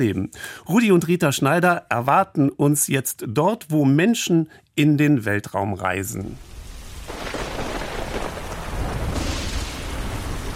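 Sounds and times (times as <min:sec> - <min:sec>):
speech: 0:00.0 - 0:06.6
heavy rain at a rocket launch pad: 0:06.4 - 0:10.5.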